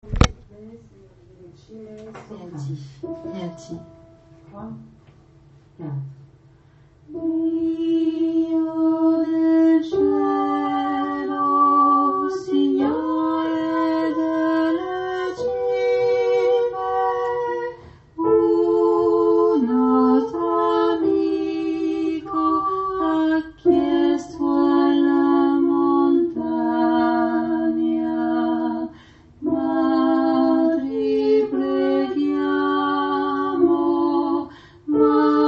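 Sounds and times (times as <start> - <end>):
alto and soprano voices in the background: 7.1 - 35.4.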